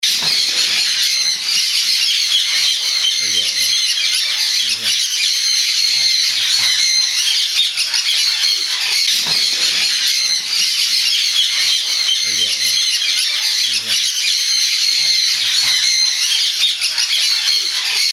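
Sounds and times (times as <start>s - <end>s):
conure parrot calls of mixed species: 0.0s - 18.1s.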